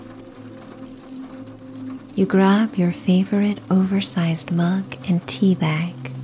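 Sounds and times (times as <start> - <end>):
electric kettle water heating toward a boil: 0.0 - 6.2
speech: 2.2 - 6.2.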